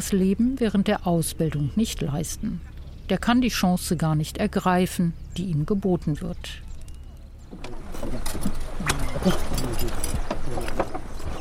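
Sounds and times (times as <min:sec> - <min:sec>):
speech: 0:00.0 - 0:06.7, 0:07.5 - 0:11.3
continuous rumbling of horse-drawn cart: 0:00.0 - 0:11.3
horse hooves clip-clopping: 0:06.8 - 0:11.3
horse-drawn cart wheels crunching on sea salt: 0:07.6 - 0:11.3.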